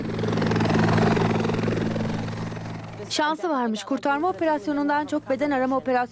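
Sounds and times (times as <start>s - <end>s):
helicopter rotor thumping: 0.0s - 3.2s
helicopter engine drone and whine: 0.0s - 3.4s, 4.1s - 6.0s
speech: 3.1s - 6.1s.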